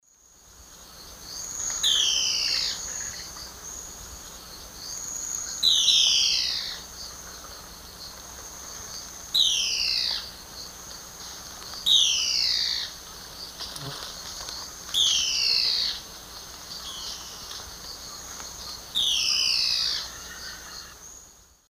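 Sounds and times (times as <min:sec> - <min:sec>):
Phlegopsis nigromaculata call in South American Eastern Lowlands: 0:01.4 - 0:03.4, 0:04.9 - 0:07.5, 0:09.3 - 0:10.4, 0:11.8 - 0:13.0, 0:13.6 - 0:21.0.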